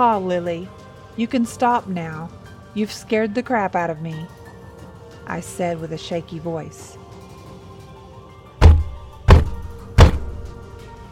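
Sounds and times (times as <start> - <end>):
speech: 0.0 - 4.4, 5.3 - 7.0
fists pounding on a wooden bedroom door: 8.6 - 10.6.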